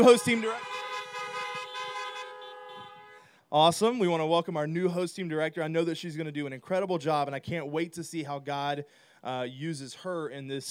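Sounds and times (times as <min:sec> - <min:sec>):
speech: 0:00.0 - 0:00.8, 0:03.5 - 0:10.6
several car horns honking together: 0:00.0 - 0:03.4.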